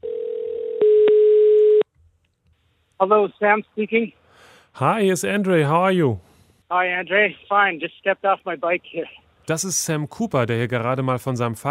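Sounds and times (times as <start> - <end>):
telephone line tone of an outgoing call: 0.0 - 1.8
speech: 3.0 - 4.2, 4.8 - 11.6.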